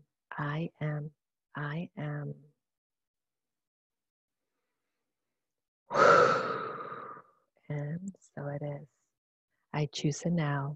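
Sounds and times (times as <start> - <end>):
speech: 0.4 - 2.5, 5.9 - 6.4, 7.7 - 9.0, 9.7 - 10.7
breathy exhale during a meditation: 5.9 - 7.3.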